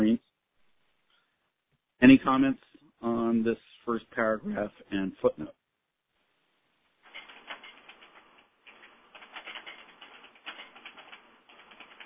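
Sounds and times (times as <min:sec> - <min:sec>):
speech: 0:02.0 - 0:05.6
rapid keyboard typing during a conference call: 0:07.0 - 0:12.0.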